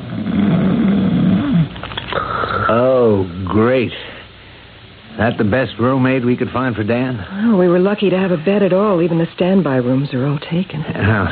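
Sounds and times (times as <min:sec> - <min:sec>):
loud rhythmic snoring of a man: 0:00.0 - 0:03.1
speech: 0:02.7 - 0:04.0, 0:05.2 - 0:11.3.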